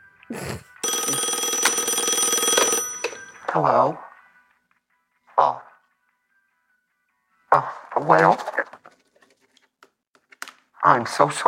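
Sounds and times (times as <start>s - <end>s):
telephone bell ringing: 0.8s - 3.6s
speech: 7.6s - 8.8s, 10.8s - 11.4s.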